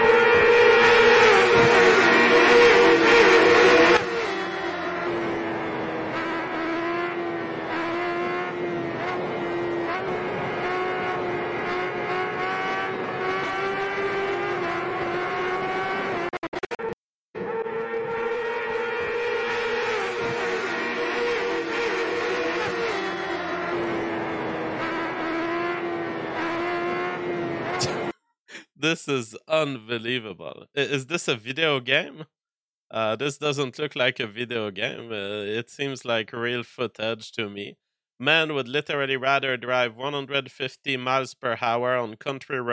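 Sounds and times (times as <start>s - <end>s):
high-revving motorcycle racing engines roaring: 0.0s - 28.1s
speech: 28.9s - 42.7s.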